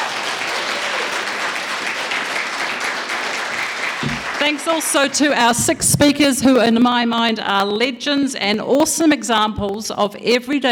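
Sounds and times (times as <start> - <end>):
audience applause for the crew: 0.0 - 5.6
speech: 4.4 - 10.7.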